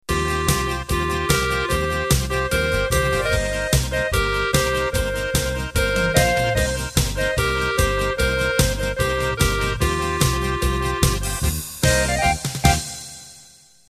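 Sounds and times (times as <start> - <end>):
Bavarian polka music: 0.1 - 13.2.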